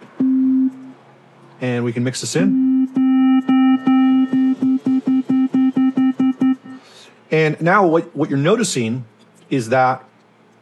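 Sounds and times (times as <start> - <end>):
speech: 1.6 - 2.7, 7.3 - 10.1
synthesized sine and square wave tone: 2.4 - 6.8
rhythmic clicks: 2.8 - 6.8.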